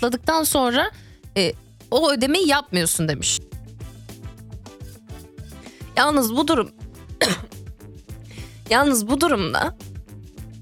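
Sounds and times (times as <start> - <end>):
speech: 0.0 - 3.5, 6.0 - 7.5, 8.7 - 9.8
loud harsh coughing bursts: 7.2 - 7.6.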